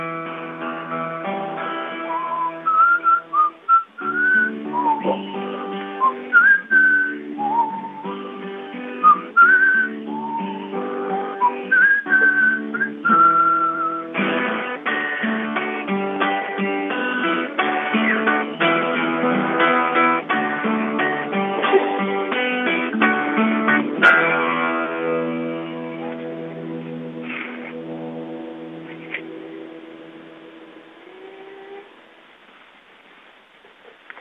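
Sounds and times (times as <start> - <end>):
steady musical accompaniment: 0.0 - 32.0
person whistling a lively melody: 2.0 - 14.2.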